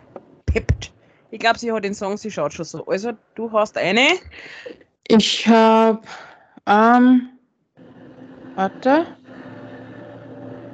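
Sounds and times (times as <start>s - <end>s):
speech: 0.5s - 7.3s, 8.6s - 9.2s
construction site noise with continuous mechanical drone and rumble: 7.8s - 10.7s.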